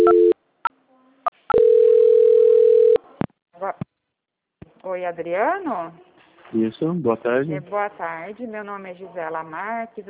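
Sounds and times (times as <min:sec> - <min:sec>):
telephone tones during a call transfer: 0:00.0 - 0:00.4, 0:01.3 - 0:03.0
speech: 0:05.0 - 0:10.0.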